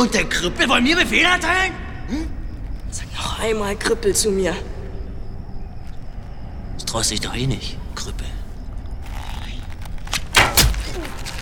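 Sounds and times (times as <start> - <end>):
speech: 0.0 - 2.3, 2.9 - 4.7, 6.9 - 8.3
faint noise: 0.0 - 11.4
arrow striking a thigh with a dull thud: 10.3 - 11.4.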